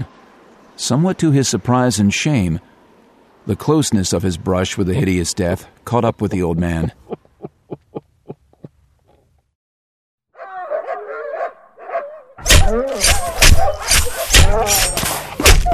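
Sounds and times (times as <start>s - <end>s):
speech: 0.8s - 2.7s, 3.4s - 7.1s
dogs howling: 10.4s - 15.0s
several dogs barking and snarling: 10.4s - 15.7s.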